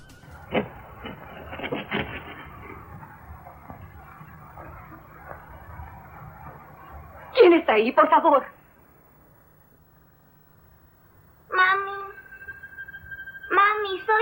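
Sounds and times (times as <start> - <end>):
thunder: 0.0 - 8.6
steady low hiss: 0.0 - 14.2
light scratching on the other side of a door: 0.2 - 7.5
speech: 7.7 - 8.6.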